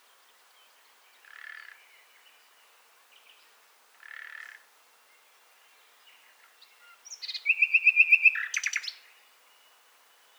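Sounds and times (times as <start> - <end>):
common nightingale Luscinia megarhynchos singing: 7.1 - 9.0.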